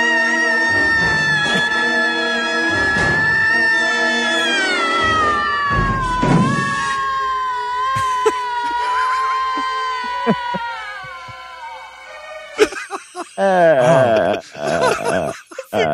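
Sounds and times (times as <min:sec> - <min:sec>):
long drawn-out horrible scream: 0:00.0 - 0:14.4
laughter: 0:07.9 - 0:11.5, 0:12.6 - 0:15.9.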